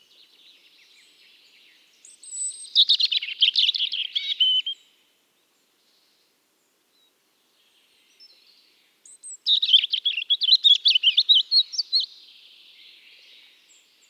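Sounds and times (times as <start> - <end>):
European robin singing: 0.0 - 4.9, 8.1 - 14.0.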